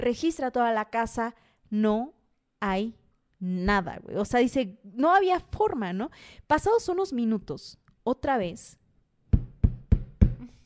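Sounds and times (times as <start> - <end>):
speech: 0.0 - 8.8
knocking on a door: 9.3 - 10.4.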